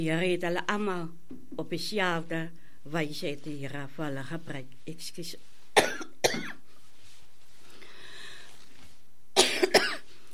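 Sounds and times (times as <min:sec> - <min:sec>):
speech: 0:00.0 - 0:06.6
quiet hiss: 0:00.0 - 0:10.3
sharp coughs from a speaker with a scratchy throat: 0:05.8 - 0:06.6, 0:09.4 - 0:10.1.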